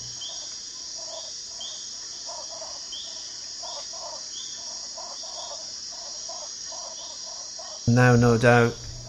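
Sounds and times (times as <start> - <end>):
Panamanian tree frog calling in short chirping bursts: 0.0 - 9.0
high buzzing night chorus: 0.0 - 9.0
speech: 7.9 - 9.0.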